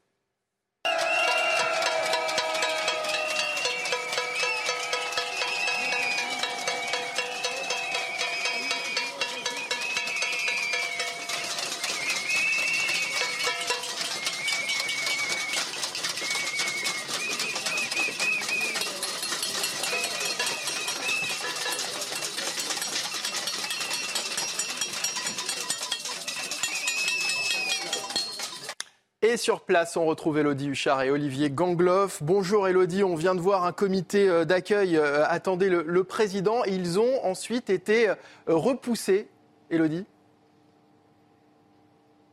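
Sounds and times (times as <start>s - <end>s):
protesters banging pots and pans: 1.2s - 28.8s
speech: 29.5s - 40.1s.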